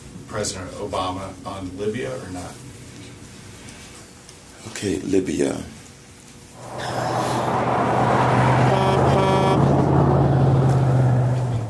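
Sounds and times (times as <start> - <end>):
speech: 0.3 - 2.7, 4.6 - 5.8
large truck driving past with low engine drone: 6.6 - 11.6
loud truck horn honking: 6.7 - 9.9.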